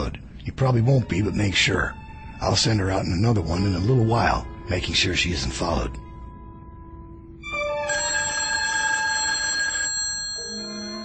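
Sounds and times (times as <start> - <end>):
speech: 0.4 - 6.0
office telephone bell ringing: 7.5 - 11.0.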